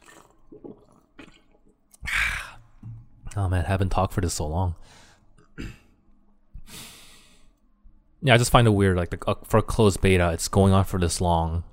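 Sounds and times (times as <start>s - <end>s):
sips and swallows of drinking water: 0.0s - 2.9s
loud breathy exhale after drinking: 2.0s - 2.7s, 6.6s - 7.5s
speech: 3.4s - 5.0s, 5.6s - 5.8s, 8.2s - 11.7s.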